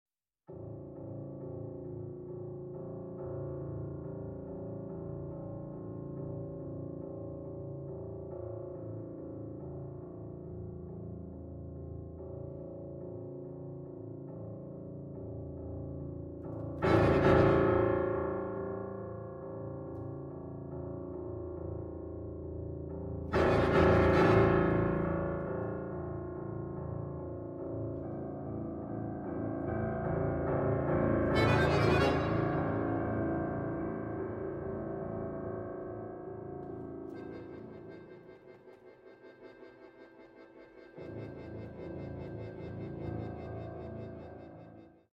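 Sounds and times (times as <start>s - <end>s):
piano playing a toccata: 0.5s - 45.1s
accordion playing a toccata: 31.2s - 34.1s, 37.1s - 44.6s.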